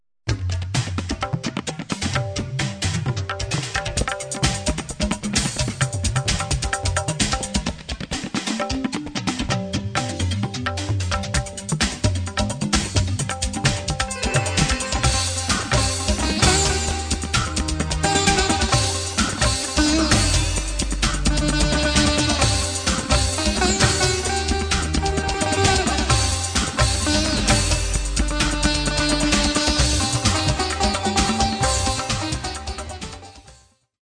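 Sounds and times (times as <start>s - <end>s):
tabla in rock and Indian fusion music: 0.3s - 33.8s.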